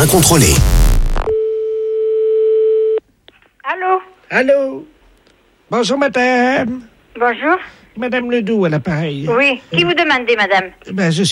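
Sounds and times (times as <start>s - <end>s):
speech: 0.0s - 1.3s, 3.7s - 4.9s, 5.7s - 11.3s
telephone line tone after a call is hung up: 1.2s - 3.0s.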